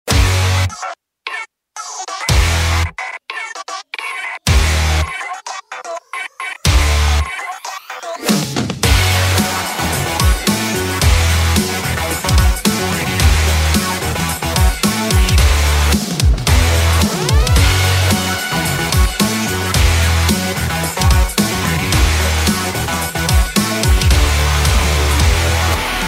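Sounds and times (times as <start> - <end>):
breakbeat rock music: 0.1 - 1.0, 1.8 - 26.0.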